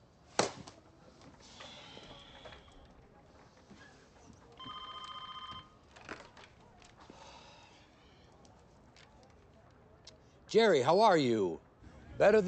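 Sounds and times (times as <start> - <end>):
telephone ringing with electronic trill: 4.6 - 5.8
speech: 10.5 - 11.6, 12.2 - 12.4.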